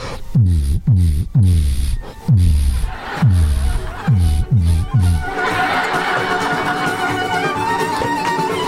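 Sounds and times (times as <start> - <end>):
voice imitating deep car subwoofer bass booms: 0.0 - 5.3
laughter: 2.7 - 8.5.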